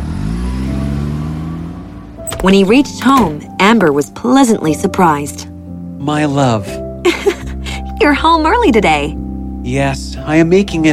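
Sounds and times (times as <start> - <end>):
car engine revving: 0.0 - 5.4
speech: 2.4 - 7.2, 8.0 - 10.9.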